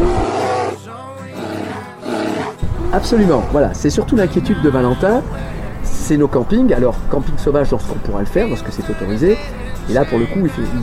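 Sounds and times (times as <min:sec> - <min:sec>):
bear roaring: 0:00.0 - 0:03.6
speech: 0:03.0 - 0:10.8.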